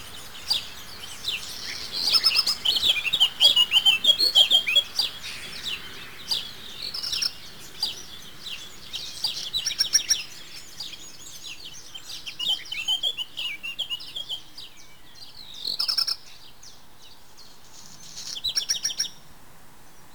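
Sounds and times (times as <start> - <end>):
several birds chirping and trilling: 0.0 - 19.2.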